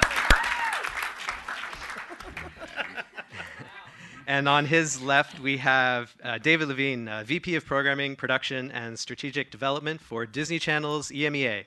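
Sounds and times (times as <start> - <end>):
audience cheers: 0.0 - 2.5
audience applause at a panel event: 0.0 - 3.8
laughter: 1.6 - 5.6
speech: 4.3 - 11.6.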